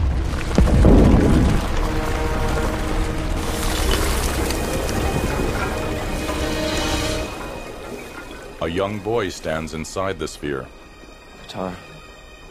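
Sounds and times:
deep rumbling boom of an ice sphere rising from a frozen plain: 0.0 - 6.7
faint cracking of ice: 0.0 - 9.8
churning, grinding roar of rising ice: 0.0 - 10.9
speech: 8.7 - 10.8, 11.5 - 11.9.

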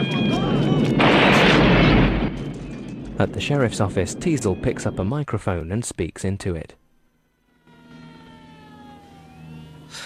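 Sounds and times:
cars exploding in a film scene: 0.1 - 5.0
speech: 3.2 - 6.8.

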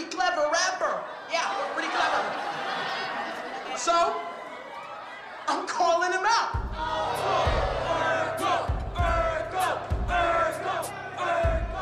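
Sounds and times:
dense crowd in a club shouting and cheering: 0.0 - 11.8
laughter: 1.2 - 5.6
thumping low bass beat: 6.6 - 11.8.

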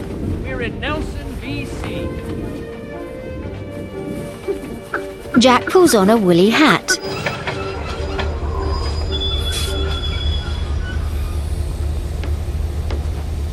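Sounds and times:
train carriages clanking: 0.0 - 13.5
train rumbling: 0.0 - 13.5
speech: 0.6 - 2.6, 5.4 - 7.1
train wheels squealing while pulling into a stop: 7.0 - 12.2.

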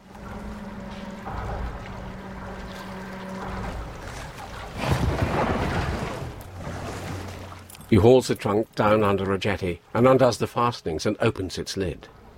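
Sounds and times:
low boat engine drone on a river: 0.0 - 8.1
river water washing and splashing: 0.0 - 9.5
speech: 7.9 - 12.2.

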